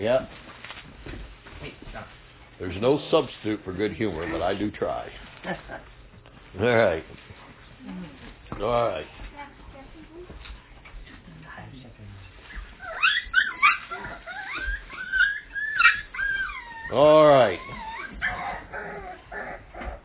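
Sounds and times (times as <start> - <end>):
speech: 0.0 - 0.4, 2.6 - 5.9, 6.5 - 9.2, 16.9 - 17.8
dogs whining and yipping: 12.4 - 20.0.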